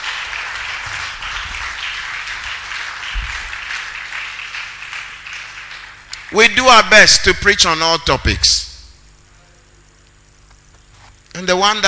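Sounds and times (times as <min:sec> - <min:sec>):
church audience clapping during a sermon: 0:00.0 - 0:07.2
speech: 0:06.3 - 0:08.7, 0:11.4 - 0:11.8.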